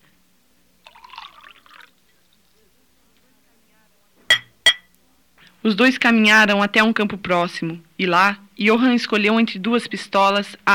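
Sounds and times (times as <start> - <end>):
liquid being poured: 0.8 - 2.0
glasses clinking in a toast: 4.3 - 4.9
speech: 5.6 - 10.7.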